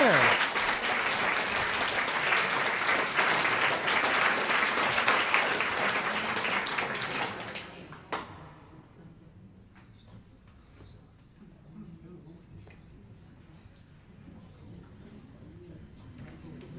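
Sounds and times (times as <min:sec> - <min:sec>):
audience applause: 0:00.0 - 0:07.6.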